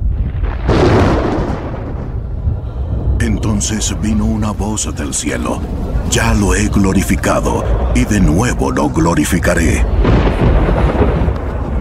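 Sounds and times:
thunder rumble: 0.0 - 11.7
speech: 3.2 - 11.2.

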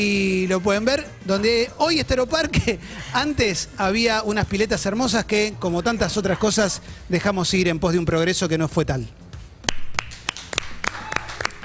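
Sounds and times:
speech: 0.0 - 9.2
applause from the team: 9.7 - 11.6.

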